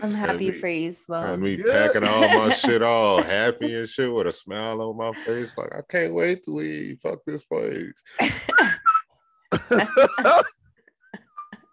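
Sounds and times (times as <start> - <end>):
speech: 0.0 - 8.8, 9.7 - 10.6
laughter: 1.2 - 10.5
person whistling a cheerful tune: 8.5 - 9.3.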